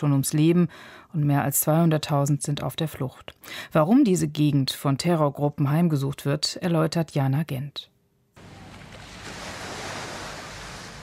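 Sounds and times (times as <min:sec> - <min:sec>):
speech: 0:00.0 - 0:07.9
ocean waves washing onto the beach of Pemba in northern Mozambique: 0:08.4 - 0:11.0.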